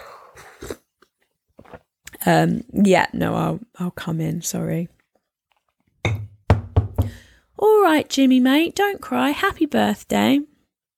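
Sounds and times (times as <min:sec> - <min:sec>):
wet chewing and swallowing of a soft blueberry muffin: 0:00.3 - 0:02.2
speech: 0:02.2 - 0:05.0, 0:07.9 - 0:10.5.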